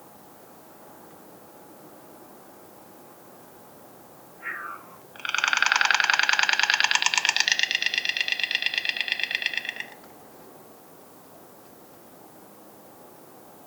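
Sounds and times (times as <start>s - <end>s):
white stork Ciconia ciconia: 4.4s - 10.1s.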